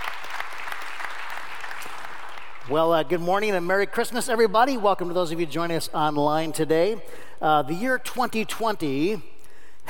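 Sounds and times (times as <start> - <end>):
audience applauding: 0.0 - 2.8
speech: 2.7 - 9.3.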